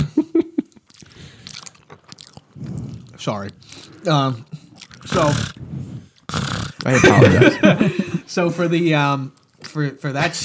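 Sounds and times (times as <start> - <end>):
wet chewing with crunchy bites: 0.6 - 7.4, 9.2 - 9.9
speech: 3.2 - 5.6, 6.8 - 10.4
laughter: 6.9 - 8.2.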